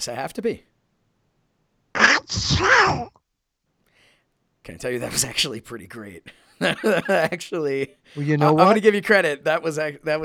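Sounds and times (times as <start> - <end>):
speech: 0.0 - 0.7, 2.3 - 3.2, 4.6 - 10.2
voice imitating a cartoon duck sneezing: 2.0 - 3.1
laughter: 4.9 - 10.2.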